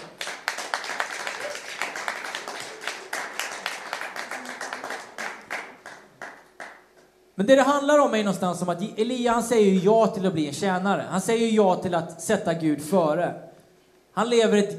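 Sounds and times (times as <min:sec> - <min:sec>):
audience applauding for panel guests: 0:00.0 - 0:07.0
speech: 0:07.4 - 0:13.5, 0:14.2 - 0:14.7.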